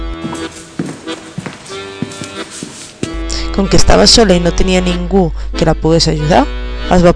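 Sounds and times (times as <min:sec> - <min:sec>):
footsteps of burglars pacing back and forth upstairs: 0:00.0 - 0:04.1
speech: 0:03.6 - 0:07.1.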